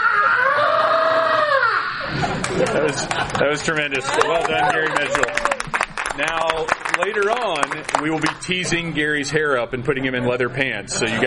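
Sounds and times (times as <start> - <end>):
man screaming imitating a rock singer's wail: 0.0 - 2.0
laughter: 0.0 - 7.4, 10.9 - 11.2
speech: 2.9 - 5.6, 6.2 - 11.2.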